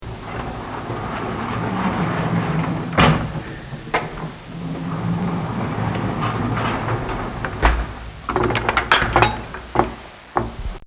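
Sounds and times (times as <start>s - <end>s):
stall door opening and closing: 0.1s - 10.6s.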